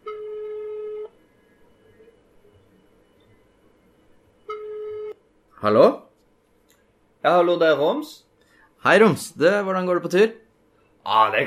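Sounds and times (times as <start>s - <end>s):
telephone call ring tone: 4.5s - 5.2s
speech: 5.6s - 6.0s, 7.2s - 8.2s, 8.8s - 10.4s, 11.0s - 11.4s.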